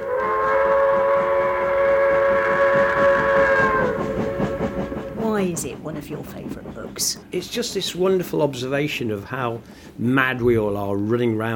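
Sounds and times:
toy train set whistling drone: 0:00.0 - 0:05.2
speech: 0:05.5 - 0:11.5.

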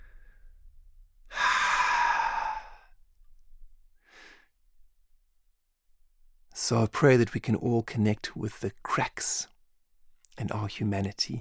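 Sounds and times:
deep breath in: 0:01.3 - 0:03.0, 0:04.0 - 0:04.5
speech: 0:06.7 - 0:09.5, 0:10.4 - 0:11.3.

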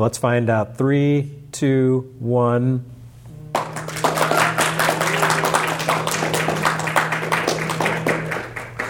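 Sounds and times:
speech: 0:00.0 - 0:02.9
audience clapping: 0:03.5 - 0:08.8.

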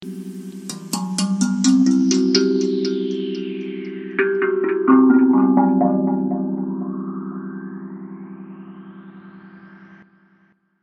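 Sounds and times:
Hapi drum in Akebono E scale with double filter effect: 0:00.0 - 0:07.0.

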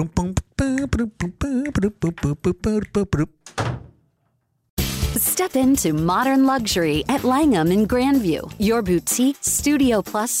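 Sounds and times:
speech: 0:00.0 - 0:03.7, 0:05.4 - 0:10.3
door slamming shut: 0:03.4 - 0:04.1.

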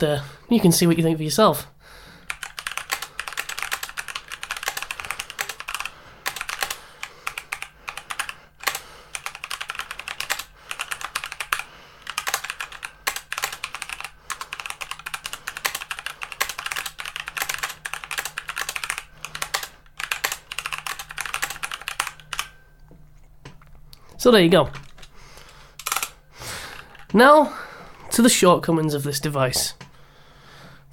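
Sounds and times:
speech: 0:00.0 - 0:02.0, 0:24.2 - 0:24.8, 0:27.1 - 0:27.6, 0:28.2 - 0:29.8
typing on a compact wireless computer keyboard: 0:02.2 - 0:22.6, 0:24.8 - 0:25.1, 0:25.8 - 0:27.1.

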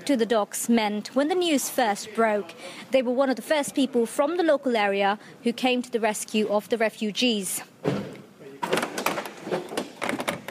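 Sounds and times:
speech: 0:00.0 - 0:08.1
bustling room noise: 0:00.0 - 0:10.4
back door opening with a soft clatter: 0:07.8 - 0:10.4.

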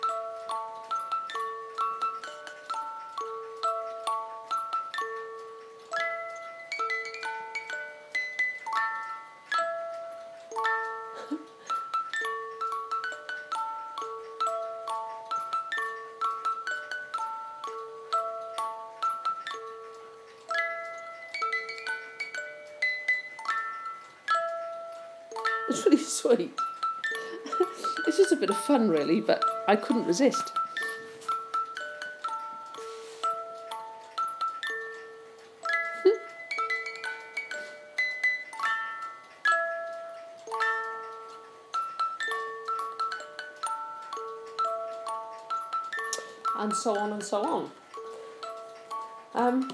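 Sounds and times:
wind-up music box playing a melody: 0:00.0 - 0:49.7
speech: 0:25.8 - 0:26.6, 0:28.2 - 0:30.6, 0:46.8 - 0:47.8.

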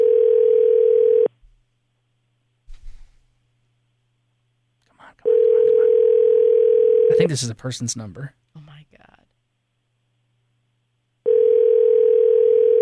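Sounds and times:
telephone ringback tone heard through the receiver: 0:00.0 - 0:01.3, 0:05.3 - 0:07.2, 0:11.2 - 0:12.7
speech: 0:07.3 - 0:08.4.

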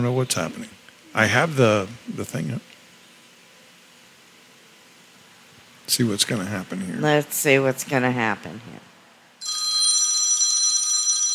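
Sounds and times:
speech: 0:00.0 - 0:02.7, 0:05.9 - 0:09.6
phone ringing with a bright buzzing electronic trill: 0:09.4 - 0:11.3.

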